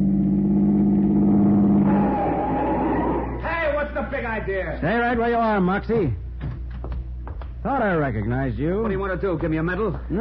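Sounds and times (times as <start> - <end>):
car engine droning as the car cuts in ahead of a convertible: 0.0 - 3.8
speech: 4.4 - 6.2, 7.6 - 10.1.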